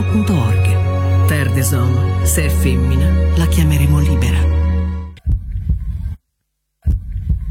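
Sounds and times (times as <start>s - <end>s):
speech: 0.1s - 0.6s, 1.3s - 4.6s
deep booming heartbeat sound effect: 5.2s - 6.2s, 6.8s - 7.4s.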